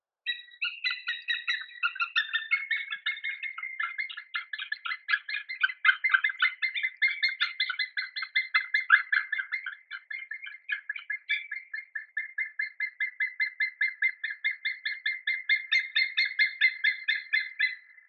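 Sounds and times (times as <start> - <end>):
sea eagle: 0.3 - 18.0.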